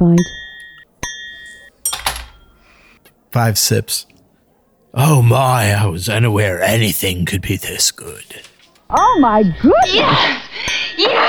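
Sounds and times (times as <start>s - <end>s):
speech: 0.0s - 0.4s, 3.3s - 4.1s, 5.0s - 11.2s
glass clinking with a bright ring: 0.4s - 3.0s.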